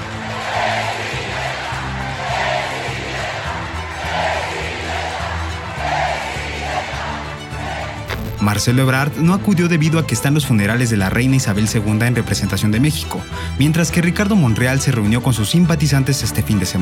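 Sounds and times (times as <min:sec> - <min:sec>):
large crowd of party supporters cheering at a political rally: 0:00.0 - 0:08.2
speech: 0:08.5 - 0:16.8.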